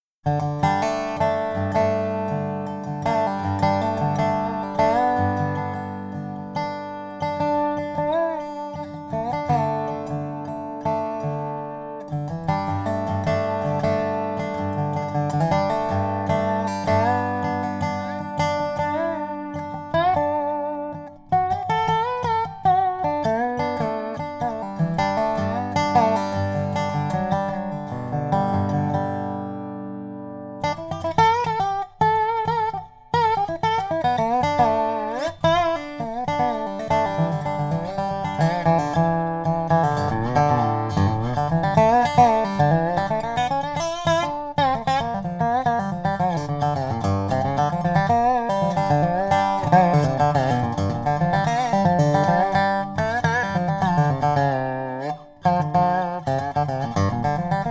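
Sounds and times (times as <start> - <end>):
maple resophonic guitar by Custom Resophonic Guitars: 0.0 - 57.6.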